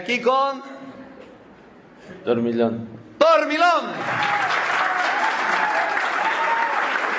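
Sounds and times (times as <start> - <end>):
speech: 0.0 - 0.9, 2.1 - 4.8
audience cheers and whoops: 4.0 - 7.1
audience clapping: 4.0 - 7.1.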